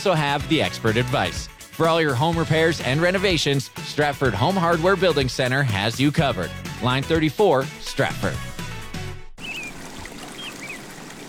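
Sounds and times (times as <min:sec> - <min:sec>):
speech: 0:00.0 - 0:08.5
river water flowing along the Avon: 0:09.4 - 0:11.2.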